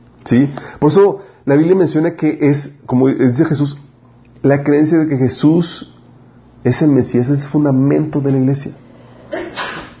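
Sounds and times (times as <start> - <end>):
speech: 0.2 - 3.8, 4.4 - 5.9, 6.6 - 9.5
sneeze: 9.3 - 9.9.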